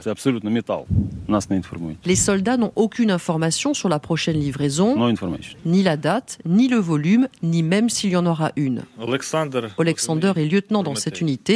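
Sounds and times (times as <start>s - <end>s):
speech: 0.0s - 11.5s
deep rumbling boom of a large gun firing: 0.9s - 1.3s.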